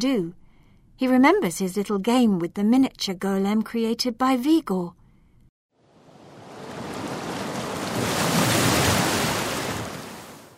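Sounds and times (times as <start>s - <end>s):
speech: 0.0s - 0.4s, 1.0s - 5.0s
heavy ocean wave crashing against a lighthouse: 5.8s - 10.5s.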